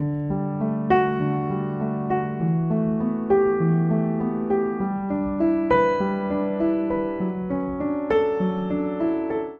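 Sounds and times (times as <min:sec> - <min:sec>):
upright piano ostinato in D major at 100 bpm: 0:00.0 - 0:09.5.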